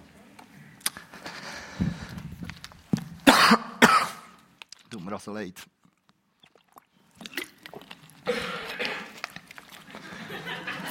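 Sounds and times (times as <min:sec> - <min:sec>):
person coughing: 0:03.2 - 0:04.4, 0:08.2 - 0:09.2
speech: 0:05.0 - 0:05.8
laughter: 0:09.9 - 0:10.8.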